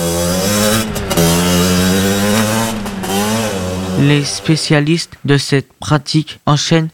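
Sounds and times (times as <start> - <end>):
unregistered motorcycle engine revving and shifting gears: 0.0 - 5.5
speech: 4.0 - 6.9.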